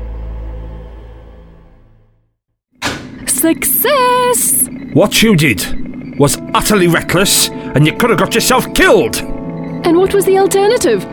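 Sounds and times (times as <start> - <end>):
door crashing open when forced: 2.8 - 3.4
speech: 3.4 - 11.1.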